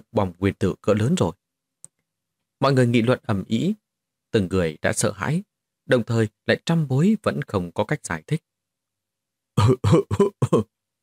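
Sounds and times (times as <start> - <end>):
speech: 0.1 - 1.4, 2.6 - 8.5, 9.6 - 10.7
voice imitating a light cough: 9.6 - 10.7.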